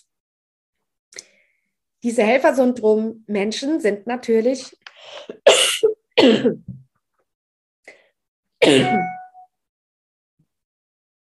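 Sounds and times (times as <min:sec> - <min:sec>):
speech: 0:02.0 - 0:06.8, 0:08.6 - 0:09.2
person coughing: 0:05.4 - 0:06.7, 0:08.6 - 0:09.2.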